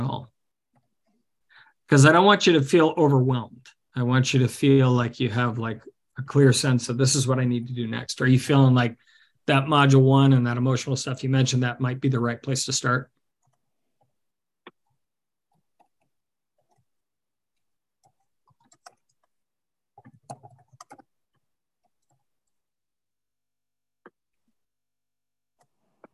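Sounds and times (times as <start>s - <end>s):
speech: 1.9s - 13.2s
computer keyboard typing: 18.0s - 22.6s.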